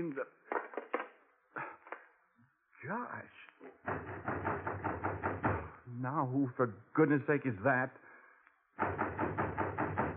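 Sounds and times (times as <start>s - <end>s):
speech: 0.0s - 0.4s, 2.8s - 4.7s, 5.9s - 8.1s
knocking on a door: 3.8s - 5.8s, 8.8s - 10.1s.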